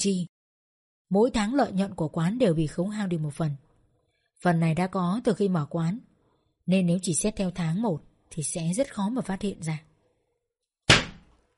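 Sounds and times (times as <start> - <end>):
speech: 0.0 - 0.3, 1.1 - 3.6, 4.4 - 6.1, 6.7 - 9.9
fist punching hard into a chair: 10.9 - 11.4.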